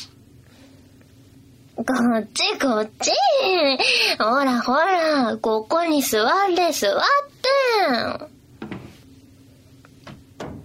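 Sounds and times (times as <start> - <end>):
speech: 1.8 - 8.3
wooden door being pushed shut: 10.0 - 10.6.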